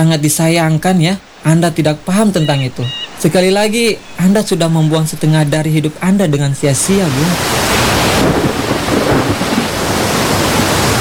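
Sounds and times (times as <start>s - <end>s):
speech: 0.0s - 8.4s
deep thunder rumbling: 0.0s - 10.9s
heavy rain: 0.0s - 10.9s.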